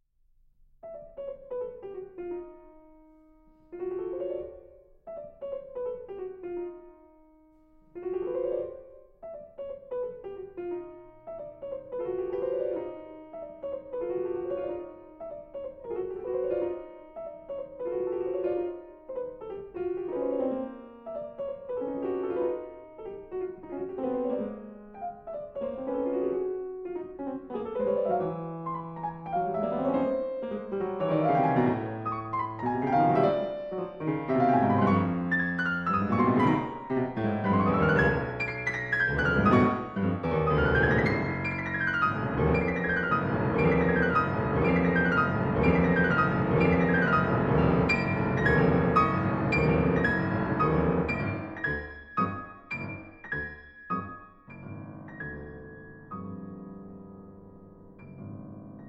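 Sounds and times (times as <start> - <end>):
piano loop: 0.9 - 58.8.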